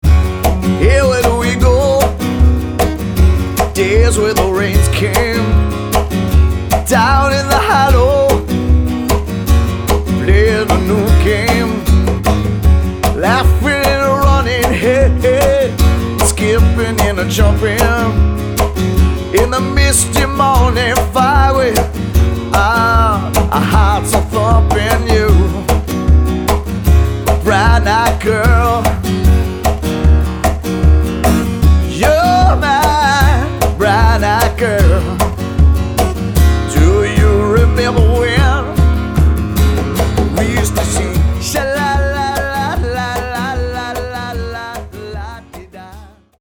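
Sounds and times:
acoustic cover duo playing: 0:00.0 - 0:46.3.

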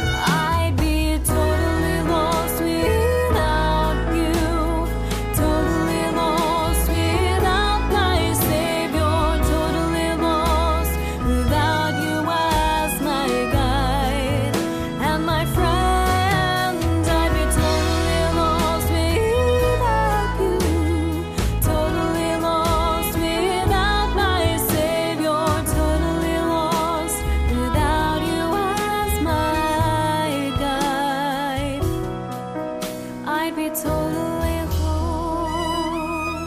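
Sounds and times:
voice: 0:00.1 - 0:31.8, 0:33.3 - 0:36.4.

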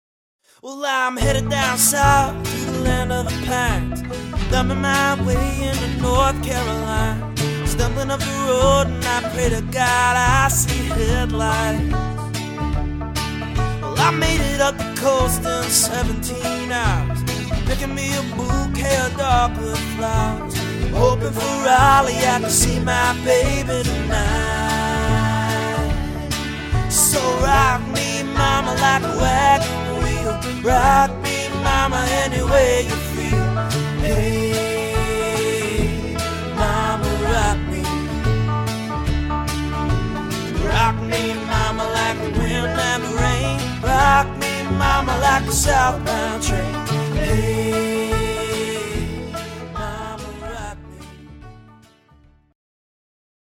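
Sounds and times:
variety band playing: 0:01.2 - 0:51.5.

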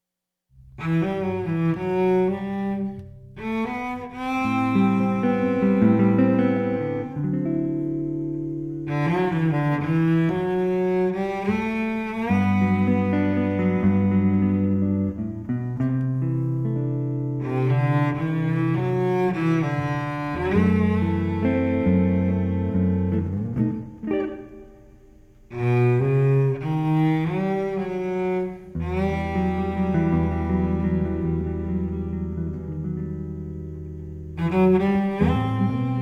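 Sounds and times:
jazz string duo with guitar: 0:00.6 - 0:35.9.

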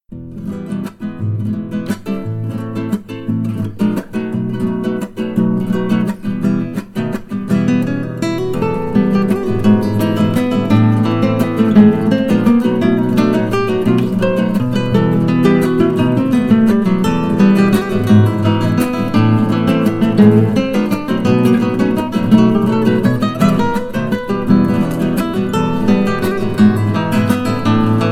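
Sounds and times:
classical guitar waltz: 0:00.1 - 0:28.1.

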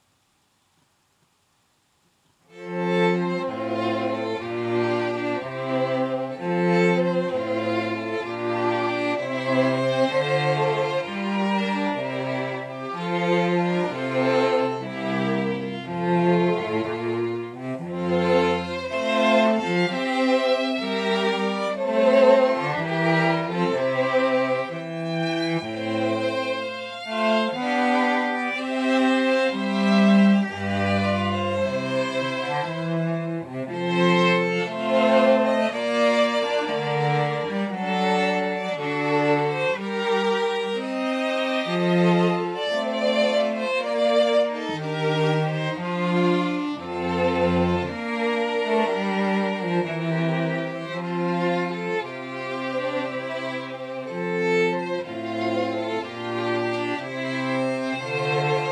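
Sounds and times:
string quartet playing an air: 0:02.5 - 0:58.7.

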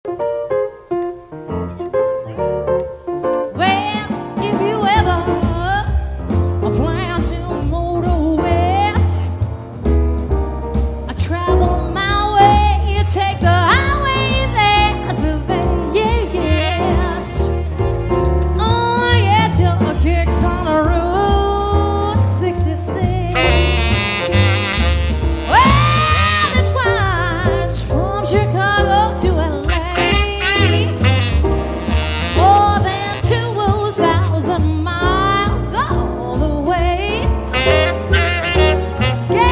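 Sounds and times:
guitar in a jazz duo: 0:00.1 - 0:39.4
saxophone in a jazz duo: 0:14.2 - 0:18.3, 0:23.2 - 0:27.6, 0:29.6 - 0:34.5, 0:37.1 - 0:39.4.

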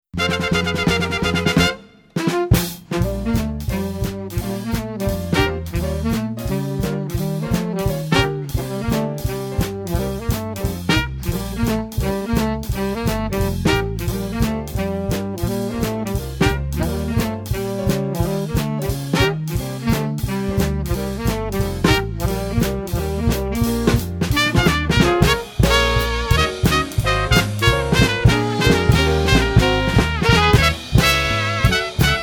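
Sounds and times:
swing band combo playing: 0:00.1 - 0:32.2.

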